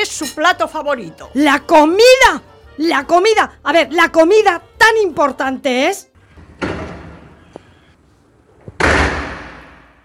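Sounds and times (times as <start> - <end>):
speech: 0.0 - 6.7
door slamming shut: 6.4 - 7.5, 8.6 - 10.0.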